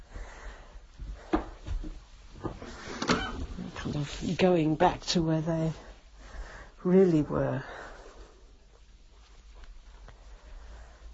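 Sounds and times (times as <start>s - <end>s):
soft rustling: 0.0s - 11.1s
wooden door being opened: 2.6s - 3.7s
speech: 4.0s - 5.9s, 6.8s - 7.8s.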